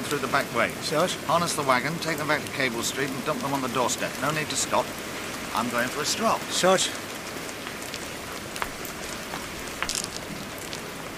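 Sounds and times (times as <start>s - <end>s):
steady rain falling: 0.0s - 11.1s
speech: 0.1s - 7.1s
raindrops pattering on a hard surface: 7.5s - 11.1s.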